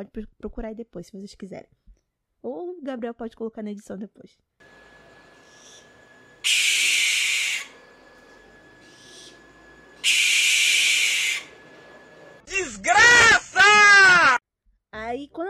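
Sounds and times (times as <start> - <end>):
speech: 0.0 - 1.8, 2.4 - 4.9, 15.3 - 15.4
barn owl screech: 4.6 - 13.4.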